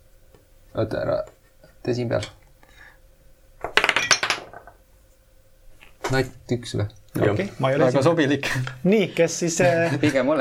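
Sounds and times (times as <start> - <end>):
speech: 0.7 - 2.4, 6.1 - 10.3
die clattering across a hard tabletop: 3.6 - 4.8
laughter: 9.4 - 10.3.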